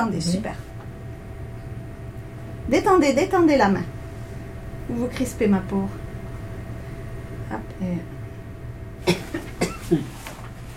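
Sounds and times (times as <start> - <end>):
speech: 0.0 - 0.7, 2.7 - 4.0, 4.9 - 6.0, 7.5 - 8.1, 9.9 - 10.1
wet phlegmy coughing: 9.0 - 10.1.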